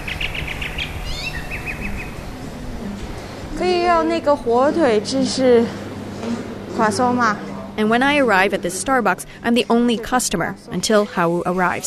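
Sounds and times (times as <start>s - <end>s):
birds chirping on a nearly empty city street in Shanghai: 0.0s - 3.5s
speech: 3.6s - 11.8s.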